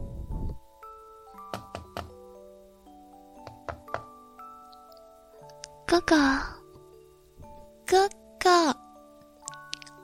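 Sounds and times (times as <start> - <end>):
soft music with sustained tones: 0.0 - 10.0
firm knocking on a door: 1.5 - 2.1, 3.4 - 4.1
speech: 5.9 - 6.6, 7.9 - 8.8.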